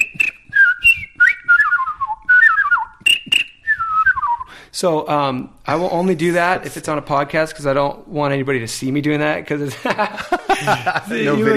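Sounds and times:
person whistling imitations of bird calls: 0.0 - 4.6
speech: 4.8 - 11.5
laughter: 9.7 - 11.5.

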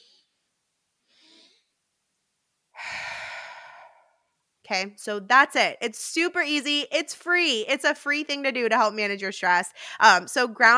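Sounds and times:
soft short inhale through the nose for stress relief: 1.1 - 1.7, 2.8 - 4.3
long exhale through the mouth for stress relief: 2.8 - 4.2
speech: 4.7 - 10.7.

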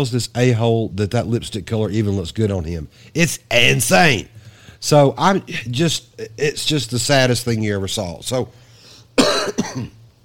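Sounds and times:
speech: 0.0 - 8.6, 9.5 - 10.0
person coughing: 9.2 - 10.0.

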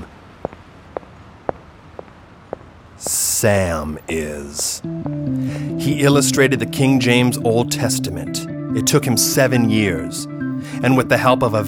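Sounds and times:
footsteps: 0.0 - 3.8, 4.4 - 5.6
speech: 3.0 - 11.6.

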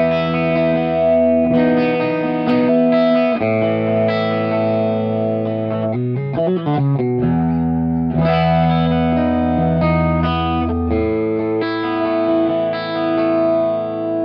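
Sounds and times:
clean electric guitar chords through thickening chorus-like effect pedal: 0.0 - 14.2.

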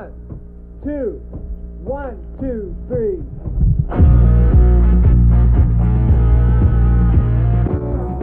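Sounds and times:
speech: 0.8 - 4.2
southern rock song with heavy guitar and bass on a radio broadcast: 3.9 - 8.2.

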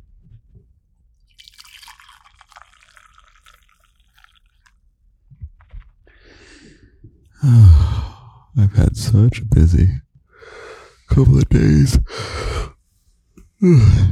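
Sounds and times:
decaf coffee pouring into a cup: 1.3 - 4.8
speech: 7.4 - 8.0, 8.6 - 10.0, 11.2 - 12.5, 13.6 - 14.0.

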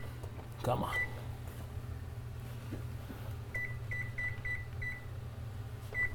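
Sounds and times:
steady low appliance hum: 0.0 - 6.1
speech: 0.6 - 1.2
short high electronic beeps from a microwave timer being set: 0.9 - 1.2, 3.5 - 5.2, 5.9 - 6.1.

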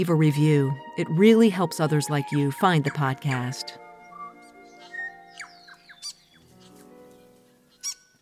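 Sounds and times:
speech: 0.0 - 3.8
exotic birds chirping in the early morning: 0.0 - 8.2
sharp exotic bird squawks: 4.0 - 8.2.

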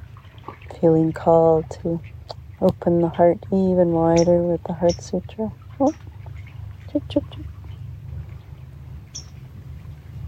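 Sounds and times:
steady low rumble of wind or noise: 0.0 - 10.2
speech: 0.5 - 6.1, 6.9 - 7.6
bird calling outdoors: 4.1 - 9.5.

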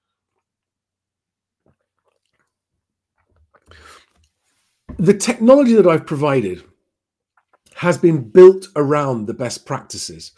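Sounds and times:
person sipping coffee with wet smacks and swallows: 0.0 - 4.5, 7.3 - 7.8
brief louder slurp of coffee: 1.5 - 4.8, 7.3 - 7.8
speech: 5.0 - 6.7, 7.8 - 10.3.

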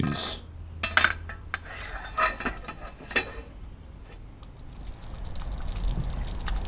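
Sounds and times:
utensil clinking against pot: 0.8 - 3.5
coconut milk for beef rendang bubbling in a pot during slow cooking: 4.2 - 6.6.

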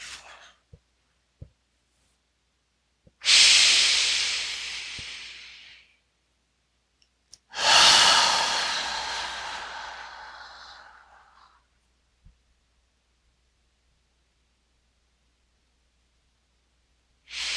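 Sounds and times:
person exhaling during a breathing exercise: 3.2 - 5.9, 7.5 - 11.6, 17.3 - 17.5.

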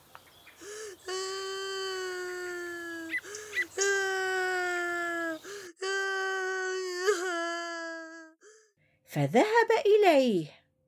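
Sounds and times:
boy crying after falling off a bicycle: 0.6 - 8.6
speech: 9.2 - 10.6.

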